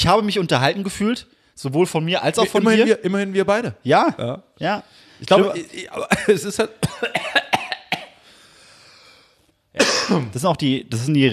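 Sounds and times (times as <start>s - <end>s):
speech: 0.0s - 7.4s, 9.8s - 11.3s
breathy pause: 1.3s - 1.6s, 4.8s - 5.3s, 8.2s - 9.6s
sharp coughs: 6.0s - 8.2s, 9.8s - 10.4s.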